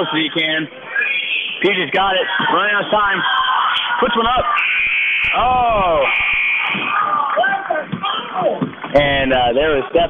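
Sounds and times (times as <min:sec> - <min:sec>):
continuous excited basketball commentary: 0:00.0 - 0:10.0
speech: 0:00.0 - 0:10.0
basketball game-end buzzer: 0:04.6 - 0:06.8.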